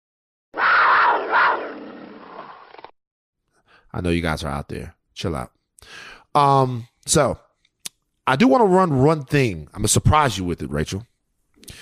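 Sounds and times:
mountain lion roar sound effect: 0.6 - 2.6
speech: 3.9 - 7.4, 8.3 - 11.1.

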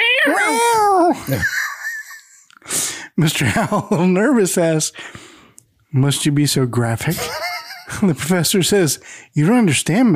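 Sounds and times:
person imitating a cat squeal: 0.0 - 1.4
laughter: 1.2 - 2.5, 7.1 - 8.0
speech: 1.3 - 1.6, 3.2 - 5.3, 5.9 - 10.1.

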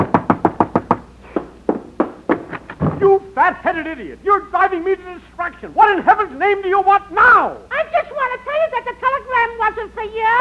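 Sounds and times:
knocking on a door: 0.0 - 3.1
speech: 3.5 - 10.4.

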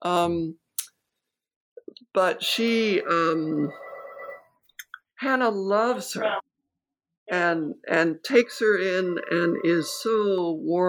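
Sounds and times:
speech: 0.0 - 0.6, 2.1 - 3.8, 5.2 - 6.4, 7.3 - 10.8
telephone ringing with a sustained electronic tone: 3.2 - 4.6.

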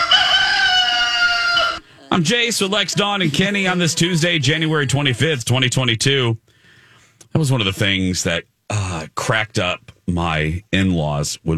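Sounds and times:
rooster crowing: 0.0 - 4.2
laughter: 1.5 - 5.9
speech: 2.1 - 6.5, 7.3 - 11.5.

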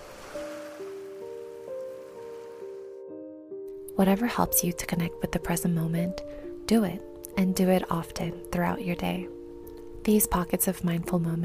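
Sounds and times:
steady soft rain: 0.0 - 2.9
gentle sustained musical tones: 0.0 - 4.3
speech: 4.0 - 9.4, 10.0 - 11.4.

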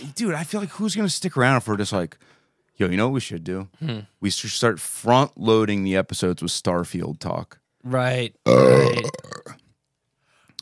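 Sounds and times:
speech: 0.1 - 9.4
loud rumbling burp: 8.5 - 9.6.

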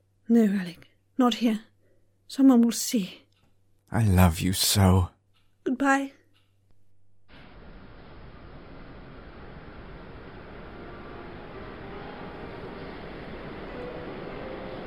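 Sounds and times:
speech: 0.3 - 1.7, 2.3 - 3.2, 3.9 - 6.2
train departing from a station platform: 8.8 - 14.8.

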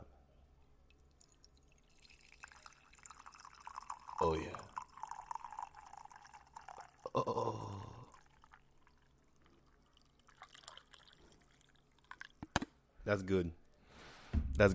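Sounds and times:
coffee streaming from a Keurig machine into a cup: 0.9 - 12.7
speech: 4.2 - 4.6, 13.1 - 13.6, 14.6 - 14.7.

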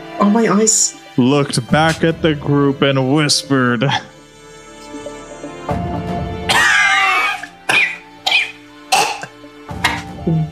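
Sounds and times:
speech: 0.2 - 4.1
weak raspy coughing from a pile of fallen chains: 3.8 - 4.2, 6.5 - 10.2.

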